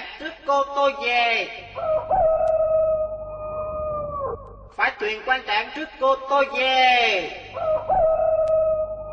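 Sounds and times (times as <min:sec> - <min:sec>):
speech: 0:00.2 - 0:02.6, 0:04.8 - 0:08.3
rooster crowing by a river: 0:01.8 - 0:04.4, 0:07.6 - 0:09.1.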